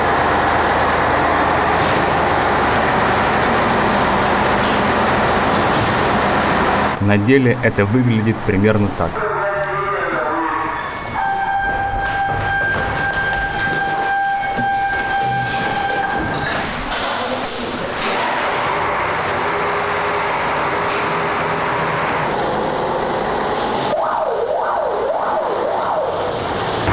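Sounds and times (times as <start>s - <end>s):
fire truck engine rumble during a training alarm drill: 0.0s - 26.9s
speech: 7.1s - 9.3s
fire truck two-tone horn: 9.2s - 16.5s
fire truck siren wailing: 9.2s - 17.0s, 23.8s - 26.9s.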